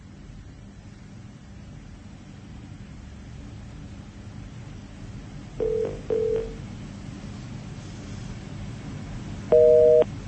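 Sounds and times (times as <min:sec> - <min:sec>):
low hum: 0:00.0 - 0:10.2
telephone busy tone after a phone call disconnects: 0:05.6 - 0:06.6, 0:09.5 - 0:10.1.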